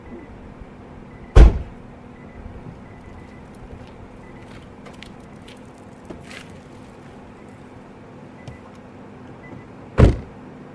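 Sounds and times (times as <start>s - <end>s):
quiet hum: 0.0s - 10.7s
car door slamming shut as people get into a car: 1.3s - 1.8s, 9.6s - 10.4s.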